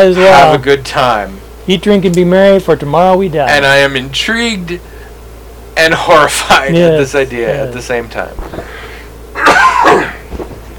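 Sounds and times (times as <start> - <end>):
speech: 0.0 - 4.9, 5.8 - 8.8
faint breathy sounds: 8.5 - 9.2
loud rasping cough from a speaker with a dry throat: 9.4 - 10.3.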